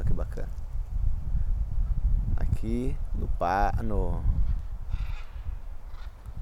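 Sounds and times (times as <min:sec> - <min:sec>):
low rumble of wind or handling noise: 0:00.0 - 0:06.4
speech: 0:02.6 - 0:04.4
blue-and-yellow macaws calling in flight: 0:04.9 - 0:06.2.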